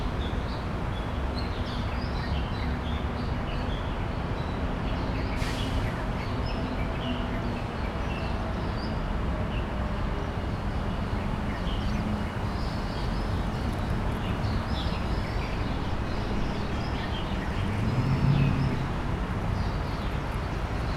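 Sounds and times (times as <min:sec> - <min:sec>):
dense city traffic rumble: 0:00.0 - 0:20.9.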